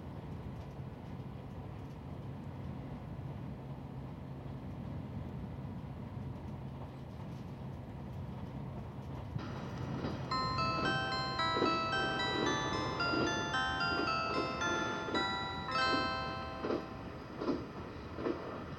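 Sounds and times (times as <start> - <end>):
train rumbling along rails approaching terminal heard from inside a carriage: 0.0 - 18.7.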